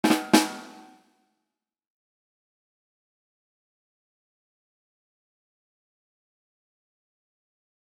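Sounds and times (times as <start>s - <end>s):
drum rimshot: 0.0s - 1.0s.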